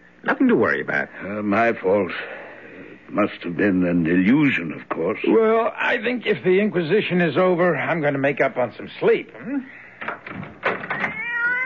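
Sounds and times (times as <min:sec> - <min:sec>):
speech: 0:00.4 - 0:02.4, 0:03.1 - 0:09.8
cat meowing insistently in short rising cries and a drawn-out wail: 0:10.9 - 0:11.6.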